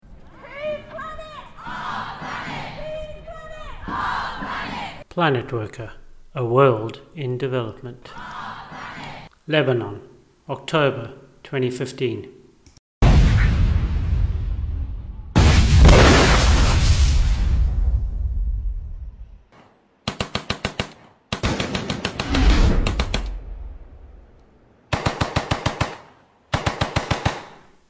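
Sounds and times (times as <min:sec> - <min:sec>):
speech: 0:05.2 - 0:08.2, 0:09.5 - 0:12.4
heavy explosions: 0:13.0 - 0:19.3, 0:21.4 - 0:24.3
rapid bursts of automatic gunfire: 0:20.0 - 0:23.3, 0:24.9 - 0:27.6.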